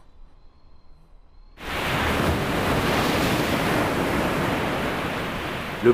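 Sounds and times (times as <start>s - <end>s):
heavy sea wave crashing against a lighthouse: 1.6s - 5.9s.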